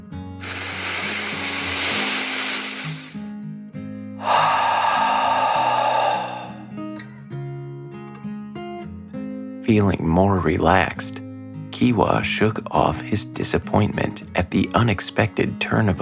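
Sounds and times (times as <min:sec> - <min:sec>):
deep breath in and out: 0:00.4 - 0:03.2, 0:04.2 - 0:07.0
soft music with sustained tones: 0:09.5 - 0:16.0
speech: 0:09.7 - 0:11.2, 0:11.8 - 0:16.0.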